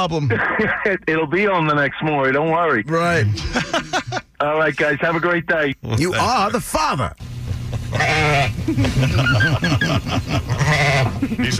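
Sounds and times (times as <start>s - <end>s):
speech: 0.0s - 7.2s, 7.9s - 11.5s
laughter: 0.2s - 0.9s, 3.2s - 4.4s, 7.4s - 11.5s
sheep bleating: 7.9s - 8.6s, 10.5s - 11.5s.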